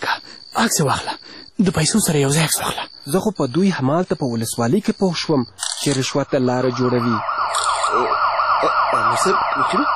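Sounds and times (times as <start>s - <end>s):
speech: 0.6s - 7.3s, 7.9s - 9.9s
police car siren wailing: 6.7s - 9.9s.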